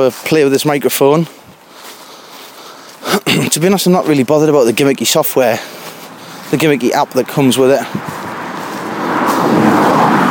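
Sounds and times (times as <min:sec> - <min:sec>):
speech: 0:00.0 - 0:01.4, 0:03.6 - 0:05.9, 0:06.5 - 0:08.2
car passing by with tyre and engine rush: 0:05.8 - 0:10.3.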